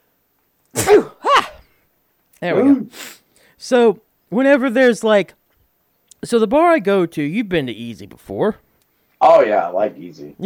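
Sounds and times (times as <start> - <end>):
person sneezing: 0.7 - 1.7, 2.6 - 3.3
speech: 2.4 - 5.4, 6.2 - 8.6, 9.2 - 10.4.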